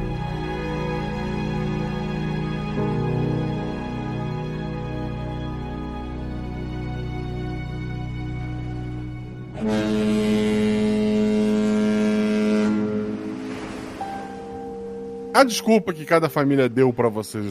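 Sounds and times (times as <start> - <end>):
boat engine droning as the boat moves away: 0.0 - 16.4
horn blast: 9.4 - 14.9
speech: 15.4 - 17.4.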